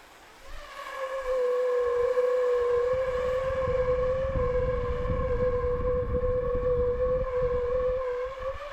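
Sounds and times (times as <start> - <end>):
burner flame inside a 50 cm plastic tube singing: 0.6 - 8.7.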